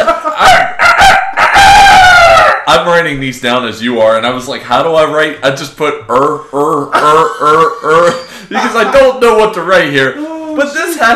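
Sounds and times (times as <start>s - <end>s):
laughter: 0.0s - 0.7s, 6.2s - 9.5s
rooster crowing: 0.4s - 2.7s
speech: 2.9s - 11.1s.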